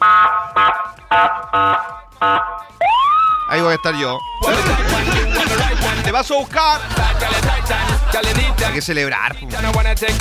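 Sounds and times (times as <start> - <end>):
car horn honking outside a house in celebration: 0.0 - 2.7
speech: 3.8 - 10.1
laughter: 4.4 - 8.9.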